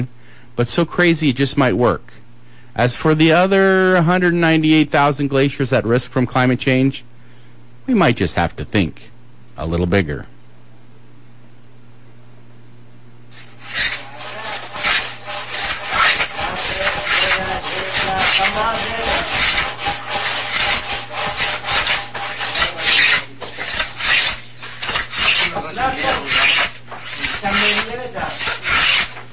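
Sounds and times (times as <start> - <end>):
speech: 0.0 - 2.2, 2.8 - 7.1, 7.9 - 10.3
wood being sawn by hand: 13.3 - 29.3.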